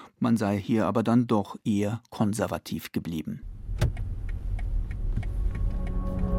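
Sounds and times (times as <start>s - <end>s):
speech: 0.2s - 4.0s
car turn signal indicator ticking: 3.8s - 6.3s.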